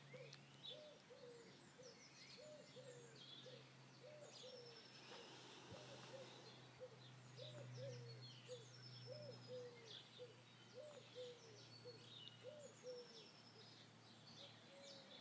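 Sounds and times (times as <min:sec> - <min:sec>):
wood pigeon cooing: 0:00.0 - 0:13.3, 0:14.4 - 0:15.1
faint constant hum: 0:00.0 - 0:15.1
other birds chirping and twittering: 0:00.0 - 0:15.1.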